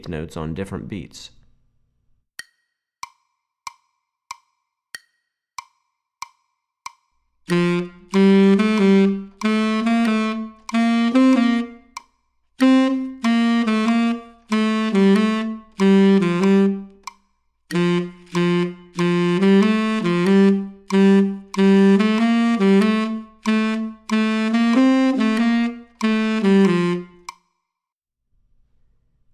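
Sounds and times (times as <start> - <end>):
tenor saxophone playing jazz articulation: 7.5 - 12.0, 12.6 - 17.1, 17.7 - 27.3.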